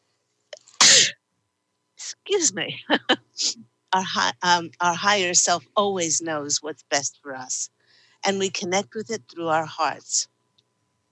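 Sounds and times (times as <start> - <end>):
loud human sneeze: 0.6 - 1.2
speech: 2.3 - 10.3
faint brief intake of breath: 7.8 - 8.2.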